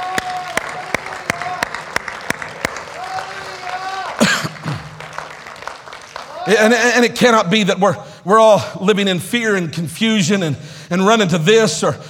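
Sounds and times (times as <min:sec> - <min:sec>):
audience clapping in a steady rhythmic beat: 0:00.0 - 0:06.7
speech: 0:06.5 - 0:12.0.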